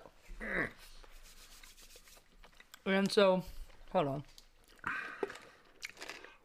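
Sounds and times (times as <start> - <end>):
speech: 2.8 - 4.4
chewing and crunching a hot pepper: 4.4 - 6.4.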